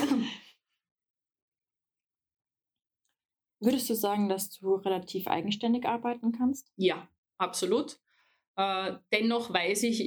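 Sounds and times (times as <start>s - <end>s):
short breathy cough: 0.0s - 0.5s
speech: 3.6s - 8.0s, 8.6s - 10.0s.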